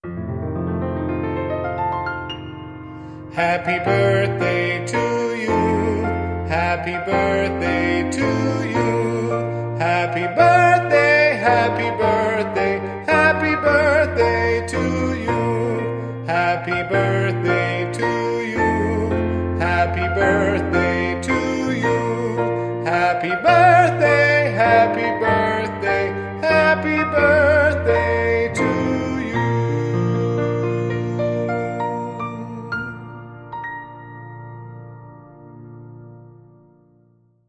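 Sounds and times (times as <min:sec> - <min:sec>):
piano: 0:00.0 - 0:37.4
man singing: 0:03.3 - 0:33.3.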